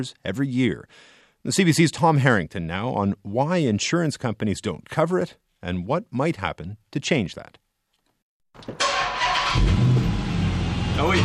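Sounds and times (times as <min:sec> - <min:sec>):
speech: 0:00.0 - 0:07.6, 0:08.6 - 0:09.9, 0:11.0 - 0:11.2
limited edition Dodge Charger engine starting with a brief crank: 0:08.7 - 0:11.2.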